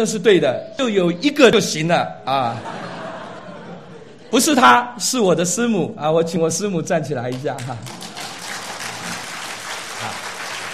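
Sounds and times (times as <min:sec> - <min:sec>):
speech: 0:00.0 - 0:03.0, 0:04.3 - 0:08.1
laughter: 0:02.3 - 0:04.6
church congregation applauding: 0:07.3 - 0:10.7.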